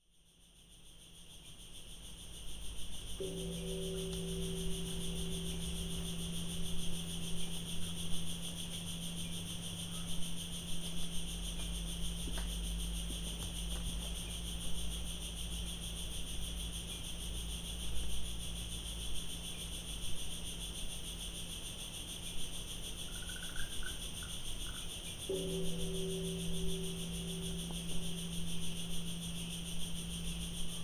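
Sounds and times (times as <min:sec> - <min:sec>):
evening cicadas on Alishan: 0:00.0 - 0:30.8
bell ringing on Alishan: 0:03.2 - 0:10.2, 0:25.3 - 0:30.8.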